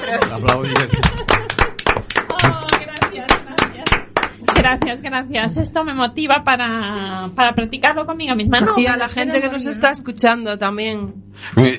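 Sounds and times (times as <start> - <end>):
voices laughing: 0.0 - 4.2
hosts clapping hands in a studio: 0.0 - 5.0
speech: 0.1 - 1.4, 4.6 - 11.7.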